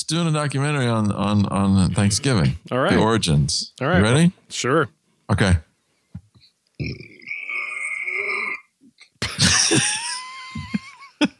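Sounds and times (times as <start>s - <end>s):
speech: 0.1s - 5.7s, 6.8s - 7.1s
loud burps: 6.8s - 9.1s
laughter: 9.2s - 11.3s.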